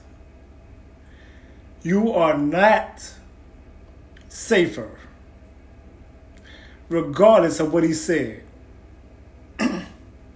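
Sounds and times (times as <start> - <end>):
speech: 1.8 - 3.2, 4.4 - 5.1, 6.9 - 8.4
throat clearing: 9.6 - 10.0.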